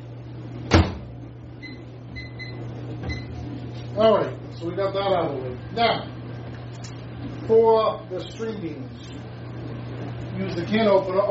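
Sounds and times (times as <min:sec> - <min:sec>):
microwave oven humming while heating water: 0:00.0 - 0:11.2
microwave oven door thumping shut: 0:00.7 - 0:01.1
speech: 0:04.0 - 0:06.1, 0:07.5 - 0:09.2, 0:10.4 - 0:11.2.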